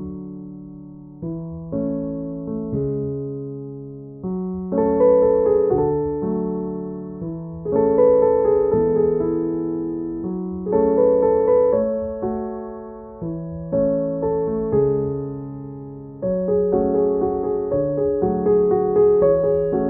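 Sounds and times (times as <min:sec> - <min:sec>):
dramatic emotional piano and strings: 0:01.2 - 0:19.8.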